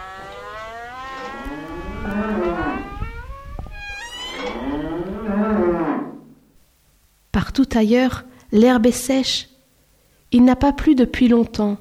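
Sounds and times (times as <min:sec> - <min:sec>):
cows mooing at the edge of a rye field: 0:00.0 - 0:06.5
speech: 0:07.6 - 0:09.5, 0:10.3 - 0:11.8.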